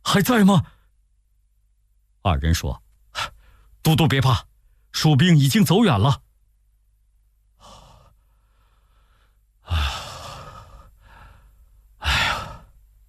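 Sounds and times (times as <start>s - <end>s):
speech: 0.1s - 0.8s, 2.2s - 6.2s
voice acting out heavy ragged breathing: 7.6s - 12.8s.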